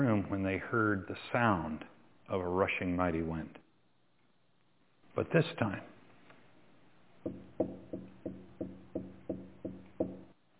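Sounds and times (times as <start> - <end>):
speech: 0.0 - 3.6, 5.2 - 5.9
hollow knocking at a courtyard gate: 7.2 - 10.3.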